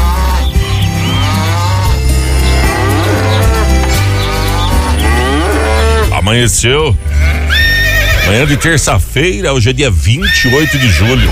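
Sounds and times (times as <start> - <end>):
cow mooing: 0.0 - 6.2, 7.1 - 8.3
steady low rumbling background: 0.0 - 10.2
speech: 6.3 - 7.4, 8.3 - 11.3.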